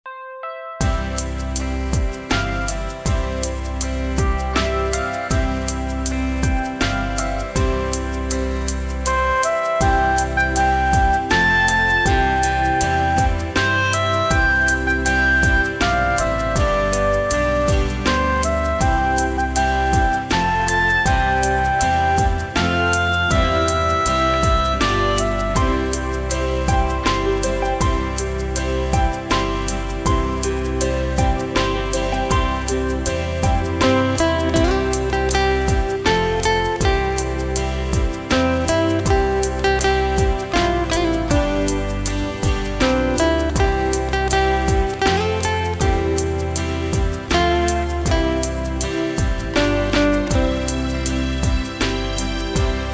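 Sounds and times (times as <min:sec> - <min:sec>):
bongos playing along: 0:00.8 - 0:52.9.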